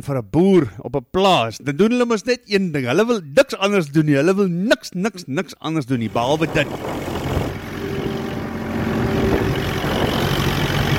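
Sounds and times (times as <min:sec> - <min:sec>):
speech: 0:00.0 - 0:07.2
faint steady tones: 0:06.0 - 0:10.9
tractor engine droning while ploughing: 0:06.0 - 0:10.9.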